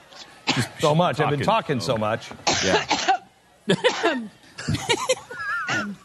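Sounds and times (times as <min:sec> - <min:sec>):
speech: 0:00.6 - 0:03.0, 0:03.7 - 0:06.0
woman coughing harshly with throaty sounds: 0:02.5 - 0:04.3, 0:05.0 - 0:06.0.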